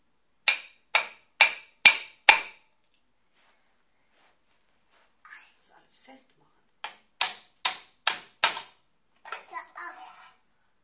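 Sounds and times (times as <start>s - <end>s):
hammer striking nails: 0.4s - 2.6s, 6.8s - 8.8s
speech: 6.1s - 6.4s.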